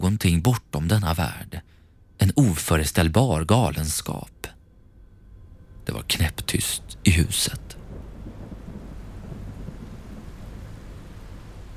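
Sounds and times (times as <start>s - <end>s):
speech: 0.1s - 1.6s, 2.2s - 4.5s, 5.9s - 7.7s
low rumble of thunder: 4.8s - 11.7s
heavy rain pattering on a metal windowsill: 5.9s - 11.7s.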